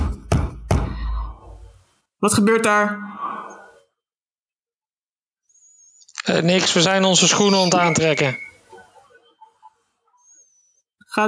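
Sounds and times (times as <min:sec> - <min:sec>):
fist pounding on a room door: 0:00.0 - 0:01.0
speech: 0:02.2 - 0:03.2, 0:06.3 - 0:08.5.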